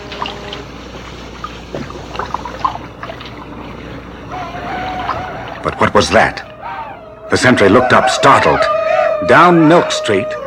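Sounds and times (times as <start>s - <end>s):
small harbor water splashes: 0.0s - 4.2s
harbor water lapping against wharf pilings: 0.0s - 6.9s
speech: 5.7s - 6.5s, 7.3s - 10.4s.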